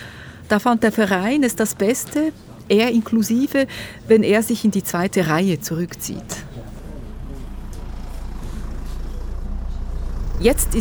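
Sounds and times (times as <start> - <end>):
speech: 0.5 - 6.5, 10.4 - 10.7
tractor engine running: 7.0 - 10.7.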